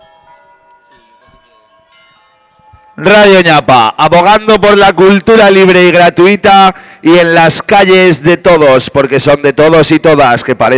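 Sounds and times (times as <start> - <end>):
church bells of the Pilar ringing: 0.0 - 6.4
speech: 3.0 - 10.7.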